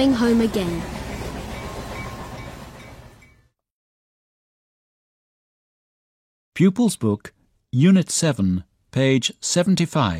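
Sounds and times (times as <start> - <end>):
speech: 0.0 - 1.0, 6.6 - 10.1
train running along the rails: 0.0 - 3.6.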